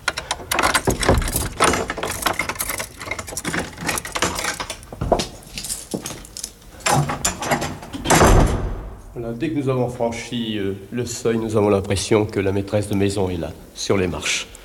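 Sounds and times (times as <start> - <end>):
keys jangling: 0.0 - 7.8
house door lock clicking and rattling: 0.0 - 8.8
house door creaking open: 0.0 - 9.0
speech: 9.2 - 14.5.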